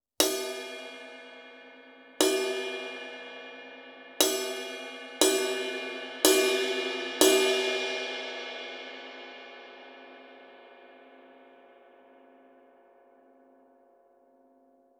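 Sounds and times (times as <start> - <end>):
20-inch Kerope thin high ride cymbal: 0.2 - 8.6.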